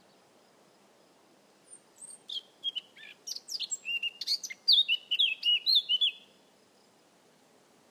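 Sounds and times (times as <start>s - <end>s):
Eurasian blackcap Sylvia atricapilla singing: 2.0s - 6.3s.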